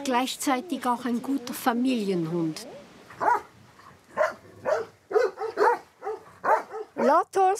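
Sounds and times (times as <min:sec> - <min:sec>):
speech: 0:00.0 - 0:03.4, 0:07.1 - 0:07.5
shepherd's herding dogs barking: 0:03.1 - 0:07.2.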